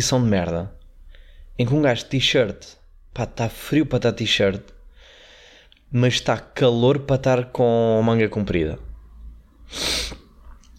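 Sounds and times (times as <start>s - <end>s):
speech: 0.0s - 0.8s, 1.6s - 4.8s, 5.9s - 8.9s, 9.7s - 10.2s
nose sniffle: 9.7s - 10.4s.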